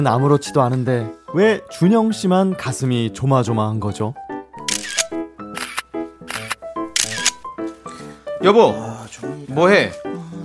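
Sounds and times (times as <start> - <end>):
speech: 0.0 - 4.3, 8.4 - 10.3
camera shutter clicks photographing a daycare certificate: 4.6 - 7.5.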